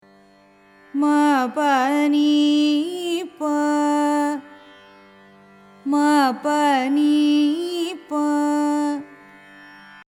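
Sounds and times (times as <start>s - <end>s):
carnatic music in raga suddha dhanyasi: 0.0s - 10.1s.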